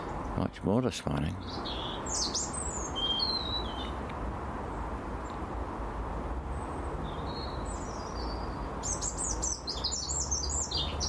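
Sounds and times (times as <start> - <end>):
road rumble: 0.0 - 11.0
speech: 0.4 - 1.9
birds chirping and singing outdoors: 1.3 - 4.0, 6.6 - 11.0.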